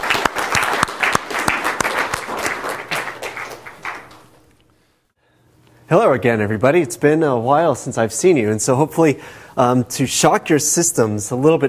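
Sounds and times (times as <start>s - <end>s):
audience applause at a course lecture: 0.0s - 4.4s
speech: 5.9s - 11.6s.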